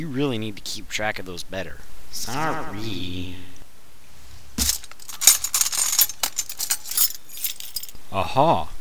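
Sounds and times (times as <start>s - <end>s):
speech: 0.0s - 3.5s, 8.1s - 8.7s
rummaging in silverware drawer: 4.6s - 7.9s
keys jangling: 4.6s - 8.0s.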